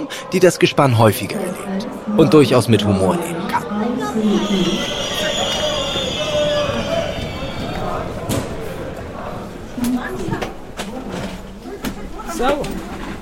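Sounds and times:
speech: 0.0s - 3.5s, 4.2s - 5.0s
crowd murmuring in a busy train station: 0.0s - 13.2s
high metallic squeal in a train station: 4.1s - 9.4s.

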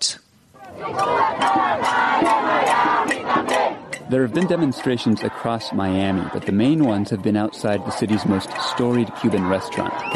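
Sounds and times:
large crowd of protesters shouting and chanting in the street: 0.5s - 10.1s
speech: 4.1s - 10.1s
whistles: 10.0s - 10.1s.

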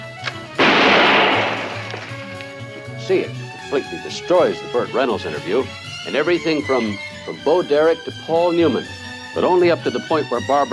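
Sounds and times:
gun test-fired into videotapes: 0.6s - 2.2s
speech: 3.1s - 10.7s.

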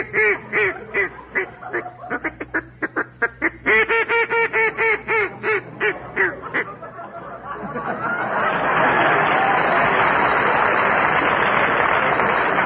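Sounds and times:
duck call blown quacking: 0.0s - 6.8s
laughter: 0.0s - 12.5s.

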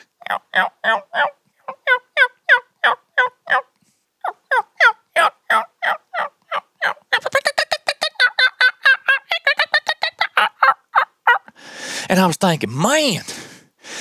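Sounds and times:
wild turkey hen yelping at dawn: 0.2s - 3.6s, 4.2s - 11.4s
speech: 0.3s - 1.4s, 12.1s - 13.4s.

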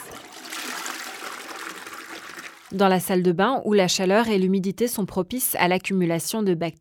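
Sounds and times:
toilet flushing: 0.0s - 3.1s
speech: 2.7s - 6.7s.

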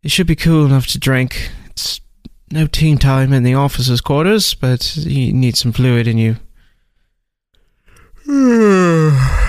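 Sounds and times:
speech: 0.0s - 6.5s, 8.3s - 9.3s
man yawning: 8.2s - 9.4s.

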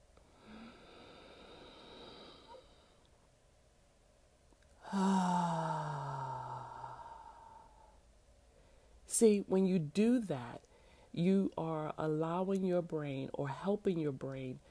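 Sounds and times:
deep inhale through the nose: 0.3s - 3.0s, 4.8s - 9.0s
speech: 9.2s - 14.6s.

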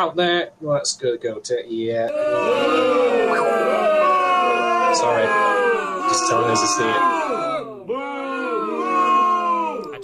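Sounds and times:
speech: 0.0s - 4.2s, 4.9s - 7.4s
crowd booing sound effect from soundboard: 2.1s - 10.0s.

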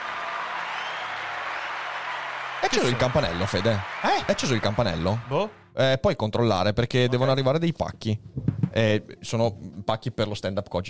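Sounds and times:
audience applause: 0.0s - 5.6s
speech: 2.6s - 10.8s.

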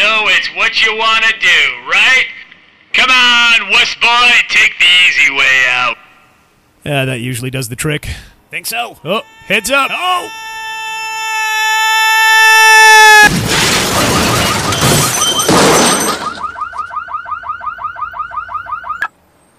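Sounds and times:
speech: 0.6s - 6.0s, 6.8s - 10.5s
pulsing car alarm: 9.0s - 11.4s, 13.8s - 19.1s
steady rising whistle: 9.1s - 13.3s
heavy crash with crunching metal as something lands on a car: 13.3s - 16.6s
car glass shattering: 13.3s - 16.7s.

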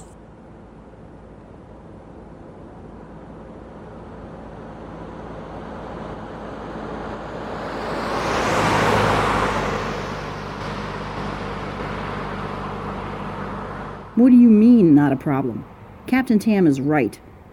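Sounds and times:
car driving past and turning a corner: 5.4s - 14.2s
speech: 14.2s - 17.3s.

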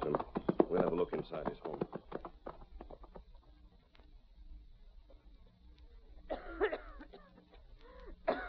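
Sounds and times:
low hum: 0.0s - 8.4s
speech: 1.3s - 2.0s
woman coughing: 6.3s - 7.6s, 8.3s - 8.4s.

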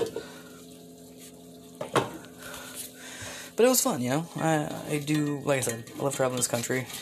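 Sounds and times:
speech: 3.6s - 7.0s
metal clinking on a frying pan: 5.1s - 6.8s.

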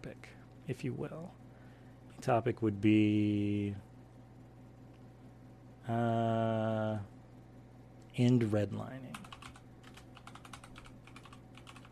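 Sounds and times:
speech: 0.0s - 1.4s, 2.2s - 3.9s, 5.9s - 7.1s, 8.2s - 9.3s
low constant hum: 0.0s - 11.9s
rapid typing on a computer keyboard: 9.1s - 11.9s.

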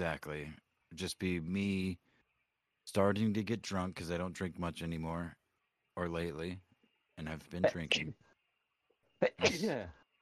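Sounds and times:
speech: 0.0s - 2.1s, 2.9s - 5.4s, 6.0s - 8.3s, 9.2s - 10.0s
person sneezing: 9.4s - 9.8s.

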